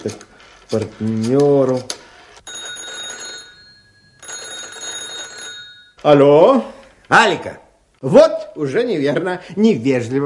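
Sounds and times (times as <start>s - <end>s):
speech: 0.0s - 2.0s, 6.0s - 10.2s
telephone bell ringing: 2.4s - 6.0s.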